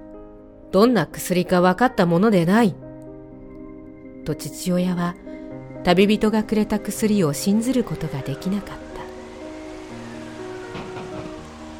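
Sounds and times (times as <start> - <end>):
speech: 0.7 - 2.8, 4.2 - 8.8
rain and wind beating on a door: 7.8 - 11.7.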